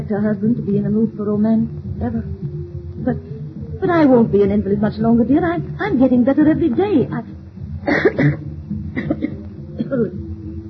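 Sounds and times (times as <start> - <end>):
speech: 0.1 - 2.4, 3.0 - 9.2, 9.9 - 10.2
strained raspy coughing fit: 7.8 - 10.1.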